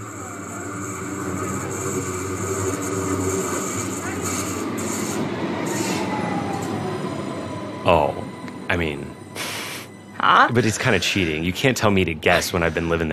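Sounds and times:
subway train wheel squeal: 0:00.0 - 0:08.1
subway train in Stuttgart rumbling: 0:00.0 - 0:13.1
speech: 0:10.5 - 0:13.1.

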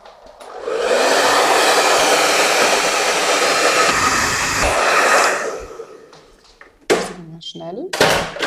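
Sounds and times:
hair dryer blowing: 0:00.0 - 0:06.4.

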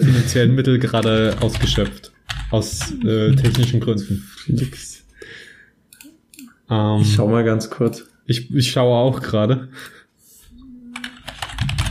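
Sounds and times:
speech: 0:00.3 - 0:05.4, 0:06.7 - 0:10.0
typing on computer keyboard: 0:00.9 - 0:03.8, 0:10.9 - 0:11.8.

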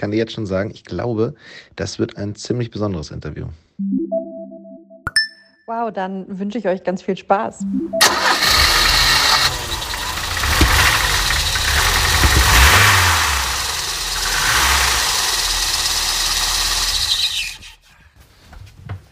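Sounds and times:
speech: 0:00.0 - 0:04.3, 0:05.7 - 0:08.6
vintage car engine cranking and idling in St. Pauli: 0:07.6 - 0:17.7.

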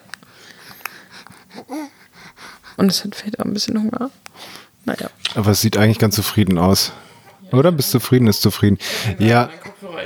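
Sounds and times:
heavy raspy breathing: 0:00.3 - 0:03.0, 0:04.2 - 0:04.8, 0:08.6 - 0:09.2
speech: 0:01.7 - 0:02.0, 0:02.8 - 0:04.2, 0:04.9 - 0:09.7.

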